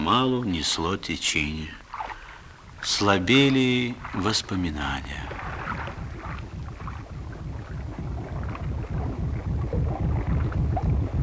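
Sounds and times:
speech: 0.1s - 1.8s, 2.8s - 5.4s
low throbbing engine rumble of a small motor boat slowing down among drifting ice floes: 2.4s - 11.2s.

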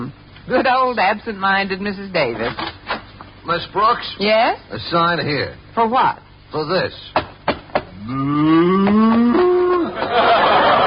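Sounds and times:
speech: 0.1s - 2.7s, 3.4s - 7.2s, 8.0s - 9.0s
cow letting out a long loud moo: 8.0s - 9.7s
laughter: 9.0s - 10.8s.

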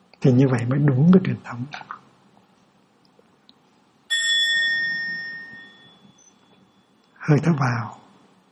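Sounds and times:
speech: 0.2s - 2.0s, 7.3s - 8.0s
Buddhist mindfulness bell struck once and ringing: 4.1s - 7.2s.

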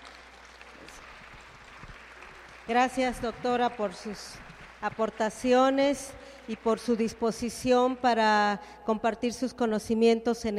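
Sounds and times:
applause for a speaker: 0.0s - 8.1s
speech: 2.7s - 10.5s.

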